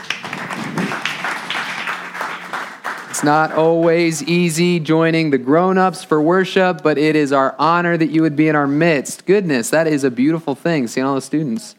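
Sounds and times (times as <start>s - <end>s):
church congregation applause: 0.0s - 3.9s
speech: 3.2s - 11.7s.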